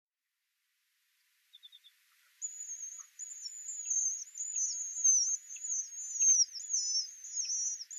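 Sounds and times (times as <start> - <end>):
Alpine accentor song at Norikura: 2.4 - 7.9.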